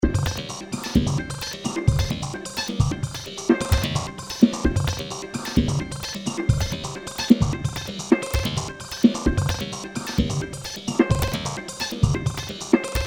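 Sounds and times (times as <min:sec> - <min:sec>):
drum kit: 0:00.0 - 0:13.0.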